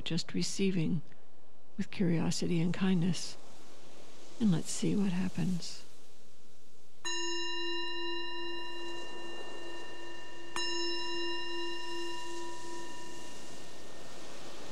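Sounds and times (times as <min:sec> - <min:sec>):
speech: 0:00.1 - 0:01.2, 0:01.8 - 0:03.5, 0:04.4 - 0:05.9
meditation bell struck: 0:07.0 - 0:14.2.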